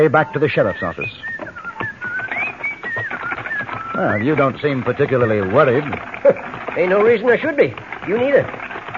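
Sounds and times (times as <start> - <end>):
speech: 0.0 - 1.3, 4.0 - 8.6
man whistling a cheerful tune: 0.3 - 4.7.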